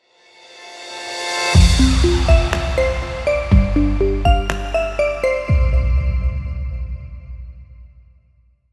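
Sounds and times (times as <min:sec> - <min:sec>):
sound logo: 0:01.6 - 0:08.0.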